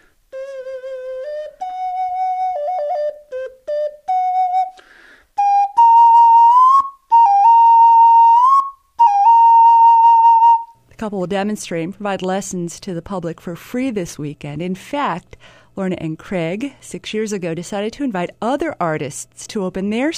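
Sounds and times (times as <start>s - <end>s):
palm-sized face-shaped pendant whistle playing a slow simple tune: 0.3s - 10.8s
speech: 11.1s - 20.1s.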